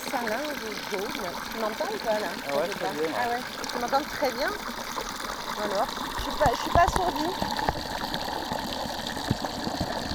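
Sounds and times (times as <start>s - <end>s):
strong water jet recorded with microphone underwater: 0.0s - 10.1s
speech: 0.1s - 4.8s, 5.6s - 7.8s
faint bubbling pops underwater: 4.5s - 10.1s.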